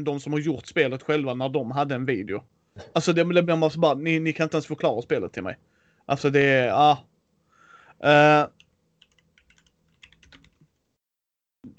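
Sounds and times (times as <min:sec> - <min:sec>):
speech: 0:00.0 - 0:07.1, 0:08.0 - 0:08.6
typing on a computer keyboard: 0:08.6 - 0:10.8.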